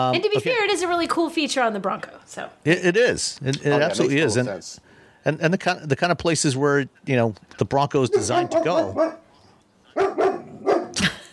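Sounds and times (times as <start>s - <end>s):
speech: 0.0s - 9.2s
dog barking: 8.1s - 9.2s, 10.0s - 11.0s.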